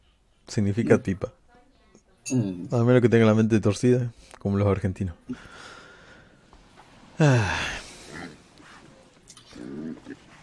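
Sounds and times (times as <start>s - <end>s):
speech: 0.5s - 1.4s, 2.3s - 5.8s, 7.2s - 7.8s
pigs grunting: 7.9s - 8.4s, 9.4s - 10.4s.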